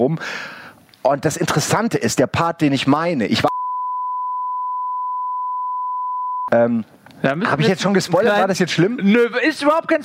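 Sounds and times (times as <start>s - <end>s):
speech: 0.0s - 3.5s, 6.6s - 10.0s
censor beep over speech: 3.5s - 6.6s.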